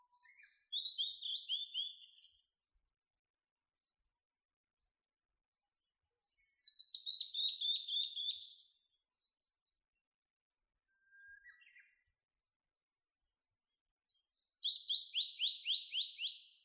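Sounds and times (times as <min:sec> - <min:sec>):
blue-and-white flycatcher singing: 0:00.0 - 0:02.6, 0:06.3 - 0:09.8, 0:10.8 - 0:16.6.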